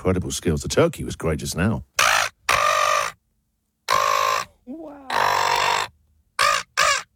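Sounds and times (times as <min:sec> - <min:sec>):
speech: 0:00.0 - 0:01.9
person imitating seagull cries: 0:02.0 - 0:03.2, 0:03.9 - 0:07.1.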